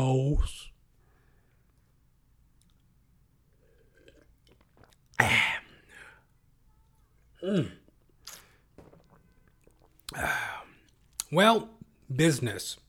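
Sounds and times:
speech: 0:00.0 - 0:00.7, 0:05.2 - 0:05.6, 0:07.4 - 0:07.8, 0:10.1 - 0:10.4, 0:11.3 - 0:12.8
person slurping and gulping water: 0:03.5 - 0:06.4, 0:07.4 - 0:11.3.

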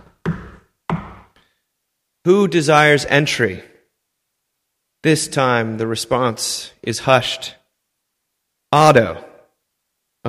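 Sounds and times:
heavy knocks on a large church door: 0:00.2 - 0:01.3
speech: 0:02.3 - 0:03.7, 0:05.0 - 0:07.6, 0:08.7 - 0:09.3.

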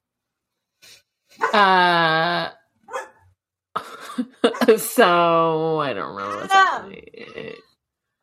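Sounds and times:
speech: 0:01.5 - 0:02.3, 0:04.6 - 0:07.6
dog barking loudly: 0:02.9 - 0:03.2.

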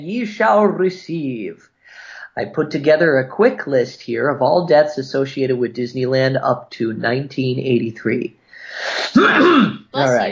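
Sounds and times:
speech: 0:00.0 - 0:10.2
rough harsh throaty cough: 0:09.0 - 0:09.8.

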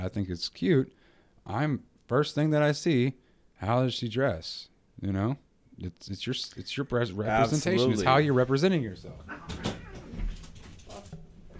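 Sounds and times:
speech: 0:00.0 - 0:09.6
cats playfighting: 0:09.2 - 0:11.5.

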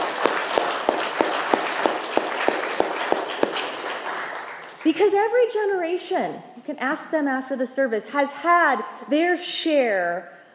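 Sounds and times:
one pair of hands clapping an even beat: 0:00.0 - 0:04.8
church audience applauding: 0:00.0 - 0:04.9
speech: 0:04.9 - 0:10.4.

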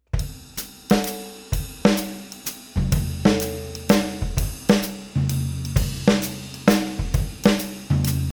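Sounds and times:
jazz waltz drumming: 0:00.0 - 0:08.3.

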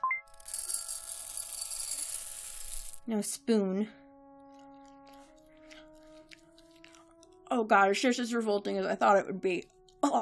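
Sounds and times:
birdseed rattling out of a food distribution slot: 0:00.3 - 0:03.1
speech: 0:03.1 - 0:04.0, 0:07.6 - 0:10.2.

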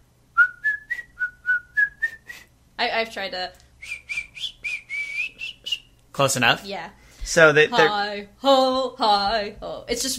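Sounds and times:
person whistling a tune: 0:00.4 - 0:02.5, 0:03.8 - 0:05.8
speech: 0:02.8 - 0:04.0, 0:06.2 - 0:10.1.

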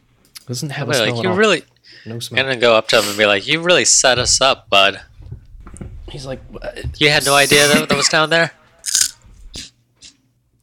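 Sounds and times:
speech: 0:00.5 - 0:05.1, 0:06.1 - 0:09.0
crunchy biting and chewing: 0:08.9 - 0:09.7.

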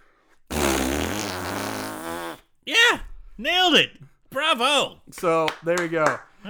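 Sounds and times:
person blowing a raspberry imitating a fart: 0:00.5 - 0:02.4
speech: 0:02.6 - 0:06.4.

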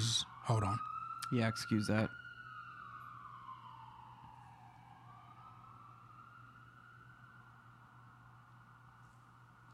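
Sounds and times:
wailing emergency siren: 0:00.0 - 0:09.7
speech: 0:00.2 - 0:02.2.

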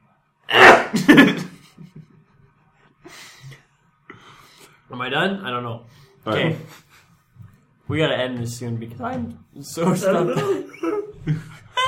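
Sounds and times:
person sneezing into arm: 0:00.5 - 0:01.4
speech: 0:00.9 - 0:01.5, 0:04.9 - 0:06.8, 0:07.9 - 0:11.5
laughter: 0:00.9 - 0:02.5, 0:06.4 - 0:07.1, 0:09.8 - 0:11.8.

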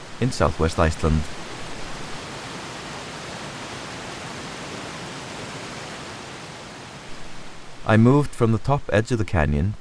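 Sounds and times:
fast-flowing river rushing over a rocky bottom into a narrow gorge in southwest Iceland: 0:00.0 - 0:07.8
speech: 0:00.2 - 0:01.4, 0:07.9 - 0:09.8.

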